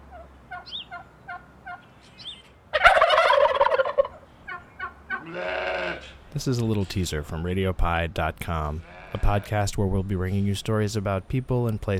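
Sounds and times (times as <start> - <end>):
turkeys clucking and calling: 0.0 - 5.4
flock of turkeys gobbling: 0.0 - 6.2
speech: 6.3 - 11.9.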